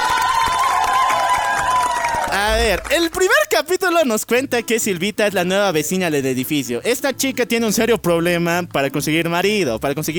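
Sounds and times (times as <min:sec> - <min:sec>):
crowd cheering and applauding: 0:00.0 - 0:03.5
speech: 0:02.4 - 0:10.1.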